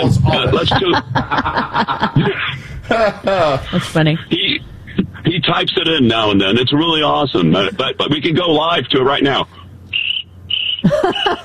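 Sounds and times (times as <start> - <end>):
speech: 0.0 - 4.4, 5.5 - 9.6, 10.8 - 11.4
laughter: 0.0 - 5.6, 7.4 - 8.3, 10.8 - 11.4
crickets chirping: 9.5 - 11.4.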